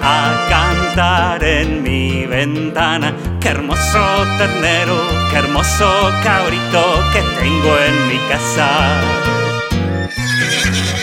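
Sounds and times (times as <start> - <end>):
upbeat music with steady repeated bass notes: 0.0 - 11.0
speech: 1.0 - 9.4
mare whinnying: 9.3 - 11.0.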